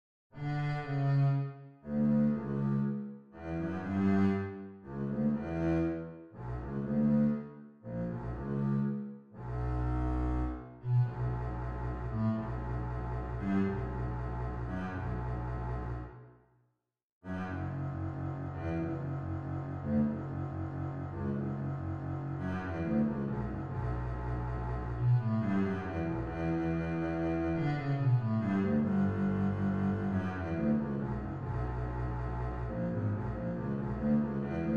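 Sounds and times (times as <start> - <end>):
bass melody: 0.4 - 16.2, 17.3 - 34.7.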